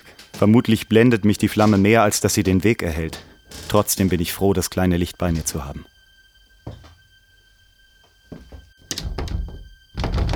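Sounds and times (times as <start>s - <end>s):
stuck door being shoved and rattled: 0.3s - 4.5s, 8.4s - 10.3s
speech: 0.4s - 5.9s.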